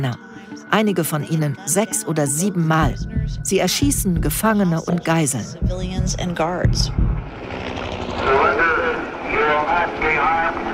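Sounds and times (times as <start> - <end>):
speech: 0.0 - 7.0
steady low mechanical drone of a helicopter: 7.2 - 10.7.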